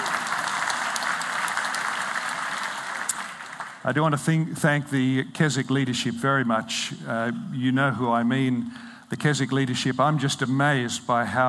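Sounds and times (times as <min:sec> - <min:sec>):
audience applause: 0:00.0 - 0:03.9
speech: 0:03.9 - 0:11.4.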